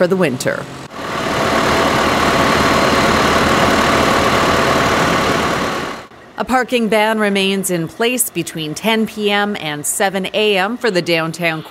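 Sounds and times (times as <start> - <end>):
speech: 0.0 - 0.8, 6.4 - 11.6
dump truck engine idling during snow loading: 0.8 - 6.1.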